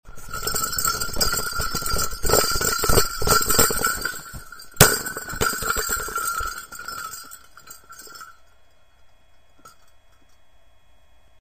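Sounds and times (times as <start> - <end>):
bell soccer ball: 0.0 - 8.6.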